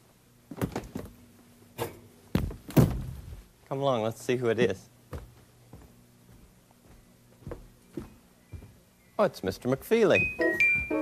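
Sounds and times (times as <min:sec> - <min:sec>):
faint steady hum: 0:00.0 - 0:10.9
refrigerator door opening and shutting: 0:00.5 - 0:01.2, 0:01.8 - 0:03.2
speech: 0:03.7 - 0:04.9, 0:09.2 - 0:10.6.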